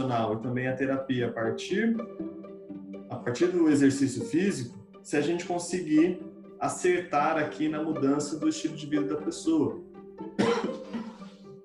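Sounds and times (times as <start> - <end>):
speech: 0.0 - 2.4, 3.2 - 10.5
person coughing harshly: 10.4 - 11.4.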